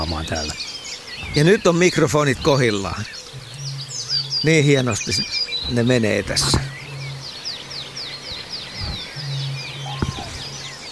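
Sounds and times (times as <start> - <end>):
speech: 0.0 - 3.2, 4.4 - 6.7
common crane and Eurasian bittern calling: 0.0 - 10.9
small songbirds chirping in outdoor dawn chorus: 0.0 - 10.9.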